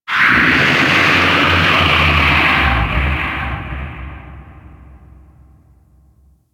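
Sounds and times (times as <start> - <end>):
ocean kraken bellow: 0.1 - 4.3.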